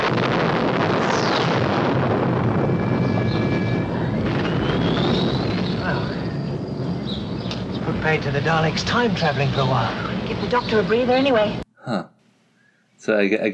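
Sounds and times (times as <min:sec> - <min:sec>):
explosion inside a garage: 0:00.0 - 0:11.6
speech: 0:08.1 - 0:12.1, 0:13.0 - 0:13.5.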